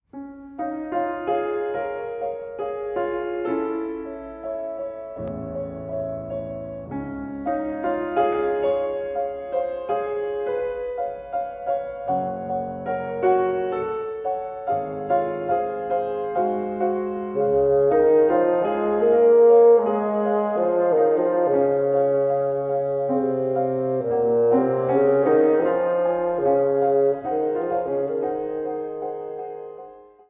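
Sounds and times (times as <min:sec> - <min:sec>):
piano: 0:00.0 - 0:30.2
bassoon: 0:15.7 - 0:29.6.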